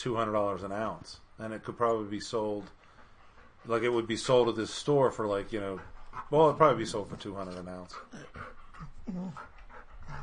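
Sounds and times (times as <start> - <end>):
speech: 0.0 - 2.8, 3.6 - 10.2
dog panting: 1.8 - 10.2
dog whining: 8.0 - 10.2.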